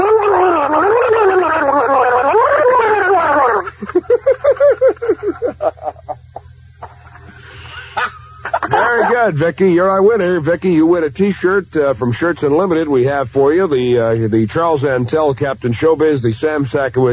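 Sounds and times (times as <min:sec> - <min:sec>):
person gargling loudly in a gargling contest: 0:00.0 - 0:03.8
laughter: 0:00.0 - 0:09.4
speech: 0:09.2 - 0:17.1.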